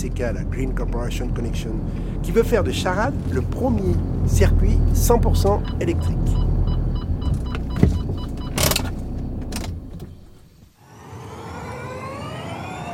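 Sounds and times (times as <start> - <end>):
speech: 0.0 - 6.5
car engine idling while being parked: 0.0 - 10.8
sharp car door clunks: 7.2 - 10.7.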